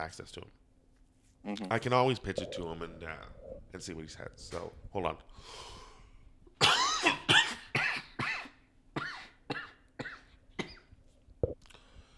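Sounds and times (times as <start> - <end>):
speech: 0.0 - 0.6, 1.4 - 5.8
person in a harsh coughing fit: 6.6 - 10.9.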